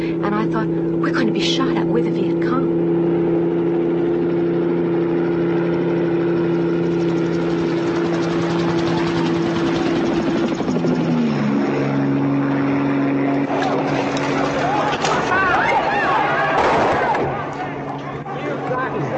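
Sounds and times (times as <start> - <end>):
helicopter flying overhead with thumping rotor: 0.0 - 19.1
speech: 0.3 - 2.6.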